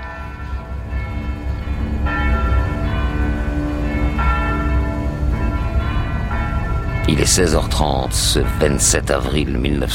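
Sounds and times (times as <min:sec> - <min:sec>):
convent church bells ringing in full peal as an air-raid alarm: 0:00.0 - 0:09.9
speech: 0:07.1 - 0:09.9.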